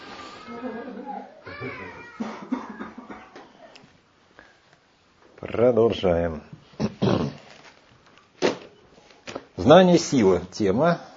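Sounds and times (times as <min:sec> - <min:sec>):
young child crying and sobbing: 0:00.3 - 0:02.8
speech: 0:00.5 - 0:02.2, 0:05.6 - 0:06.5, 0:09.7 - 0:11.1.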